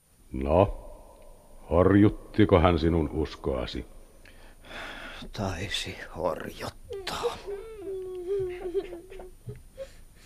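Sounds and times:
speech: 0.3 - 0.8, 1.7 - 4.0, 4.7 - 7.5
children crying softly: 6.9 - 9.6.

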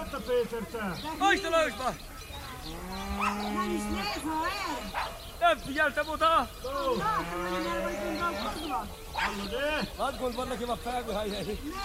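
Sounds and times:
herders shouting outdoors: 0.0 - 11.8
speech: 0.3 - 11.8
cow mooing on pasture: 2.7 - 4.2, 6.9 - 8.8.

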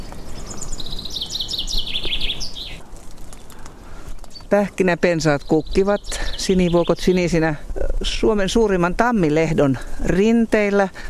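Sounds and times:
common chaffinch singing: 0.0 - 2.8, 5.1 - 7.5
soft outdoor hum: 0.0 - 11.0
speech: 4.5 - 11.0.

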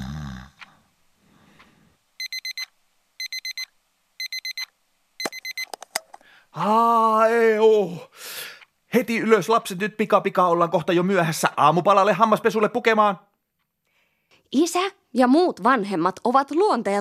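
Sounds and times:
person groaning loudly: 0.0 - 0.8
bedside alarm clock beeping rapid electronic pips: 2.2 - 5.7
speech: 6.6 - 8.3, 8.9 - 13.3, 14.5 - 16.9.

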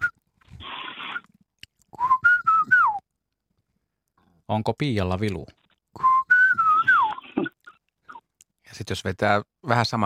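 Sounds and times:
person whistling imitation of Eurasian golden oriole call: 2.0 - 3.0, 6.0 - 7.5
speech: 4.5 - 5.6, 8.8 - 10.0.

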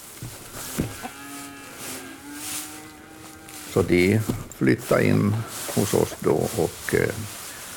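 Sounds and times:
cow mooing: 0.6 - 4.2
speech: 3.7 - 7.4.

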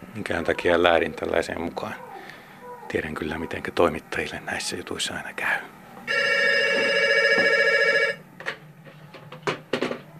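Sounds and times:
speech: 0.2 - 2.1, 2.9 - 5.8
telephone ringing with an electronic trill: 6.1 - 8.3.

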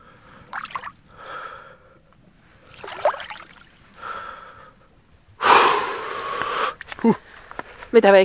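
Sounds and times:
loud drawn-out gasping exhale: 0.0 - 2.0, 4.0 - 4.8, 5.4 - 6.8
heavy breathing of a person immersed in cold water: 0.0 - 2.6, 3.9 - 7.8
faint cold water sloshing: 0.3 - 1.1, 2.6 - 4.1
speech: 7.0 - 7.3, 7.9 - 8.2.

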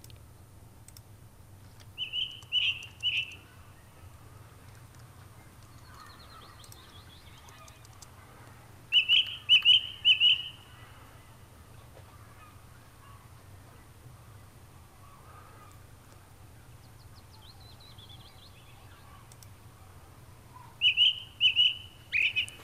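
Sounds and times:
low steady hum: 0.0 - 22.6
faint twittering: 1.9 - 22.6
ring ouzel singing: 2.0 - 3.5, 8.9 - 10.8, 17.2 - 19.2, 20.6 - 22.6.

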